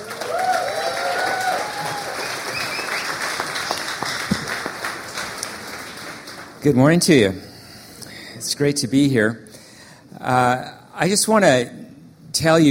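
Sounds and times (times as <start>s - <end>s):
crowd applauding: 0.0s - 6.6s
speech: 6.6s - 7.5s, 8.6s - 9.4s, 10.2s - 11.8s, 12.4s - 12.7s.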